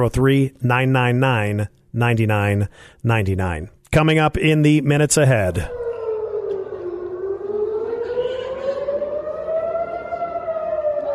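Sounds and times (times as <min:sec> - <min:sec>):
speech: 0:00.0 - 0:05.8
civil defense air raid siren in Tel Aviv wailing: 0:05.3 - 0:11.1.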